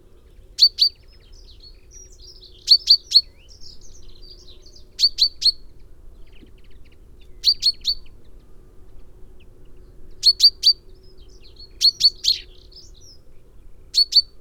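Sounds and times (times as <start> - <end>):
common chaffinch Fringilla coelebs calling with bright high notes: 2.0 - 5.6, 10.2 - 13.2, 13.9 - 14.3.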